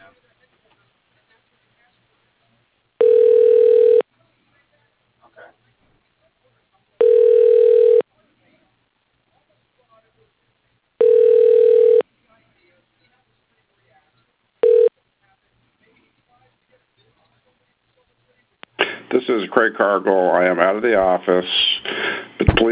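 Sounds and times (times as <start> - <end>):
telephone ringback tone while a call is transferred: 3.0 - 4.0, 7.0 - 8.0, 11.0 - 12.0, 14.6 - 14.9
speech: 19.5 - 21.7.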